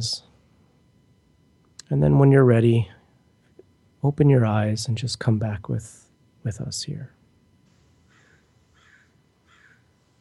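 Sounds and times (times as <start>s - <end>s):
speech: 0.0s - 0.3s, 1.9s - 3.0s, 4.0s - 7.2s
bird cawing outside: 7.7s - 10.1s.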